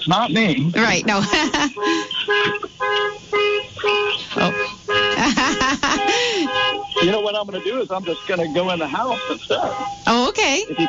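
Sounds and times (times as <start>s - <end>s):
speech: 0.0s - 4.7s, 7.3s - 10.8s
car alarm blaring in harsh electronic tones: 0.0s - 10.8s
laughter: 0.8s - 3.1s, 4.2s - 10.0s.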